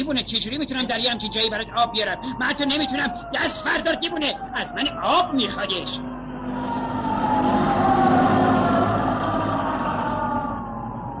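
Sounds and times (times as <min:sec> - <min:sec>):
speech: 0:00.0 - 0:06.1
ambulance siren wailing: 0:00.0 - 0:11.1.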